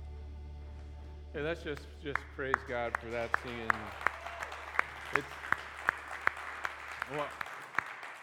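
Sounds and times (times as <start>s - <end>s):
speech: 1.3s - 4.1s, 5.1s - 5.5s, 7.1s - 7.5s
audience applause: 2.1s - 8.1s.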